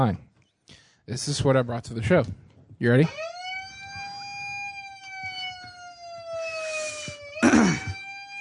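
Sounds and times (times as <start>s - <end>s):
speech: 0.0s - 3.3s
police car siren wailing outside: 3.0s - 8.3s.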